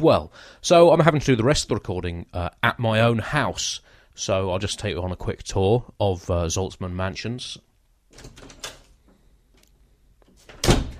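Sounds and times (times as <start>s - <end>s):
speech: 0.0s - 8.6s
door handle rattling: 8.1s - 8.9s
door opening: 8.1s - 8.9s, 10.3s - 10.9s.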